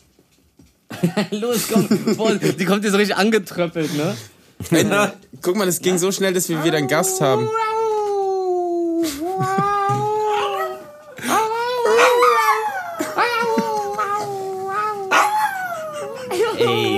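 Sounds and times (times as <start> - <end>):
laughter: 0.9 - 2.8, 9.0 - 10.6, 12.7 - 14.6, 15.7 - 16.9
speech: 1.0 - 7.8
dog whining and vocalizing: 5.8 - 16.9.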